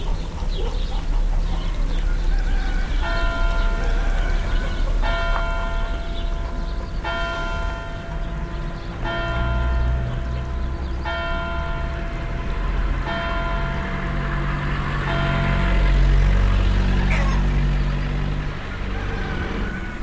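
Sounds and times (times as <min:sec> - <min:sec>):
church bells tolling in an agricultural town southeast of Lyon: 0:00.0 - 0:18.7
low rumble of passing cars trucks and tractors: 0:00.0 - 0:20.0.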